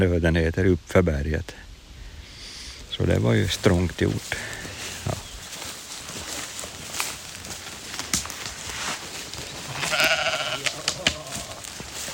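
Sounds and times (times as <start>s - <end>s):
speech: 0.0s - 1.7s, 3.0s - 5.2s
hissy outdoor background: 0.0s - 12.1s
sheep bleating on a mountain pasture: 9.6s - 11.8s.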